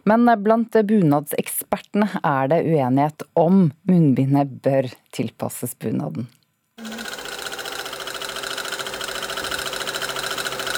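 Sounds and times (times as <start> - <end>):
speech: 0.1 - 6.4
sewing machine running with rapid even mechanical rattle: 6.8 - 10.7.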